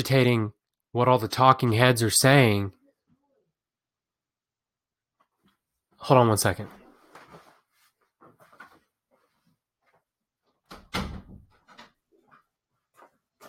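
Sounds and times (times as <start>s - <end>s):
speech: 0.0s - 2.8s, 6.0s - 6.8s
door pushed shut with heavy thud: 10.7s - 11.5s.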